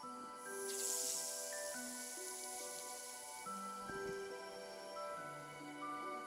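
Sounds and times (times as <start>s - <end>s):
spider spraying out a 25-meter silk bridging line: 0.0s - 5.0s
orchestral music: 0.0s - 6.2s.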